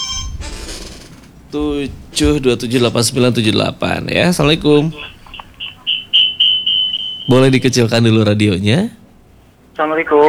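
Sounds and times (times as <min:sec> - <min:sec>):
incoming telephone call ringing with electronic tone: 0:00.0 - 0:00.7, 0:04.9 - 0:07.4
noisy sound: 0:00.0 - 0:10.2
speech: 0:01.5 - 0:05.2, 0:07.3 - 0:09.0, 0:09.8 - 0:10.2.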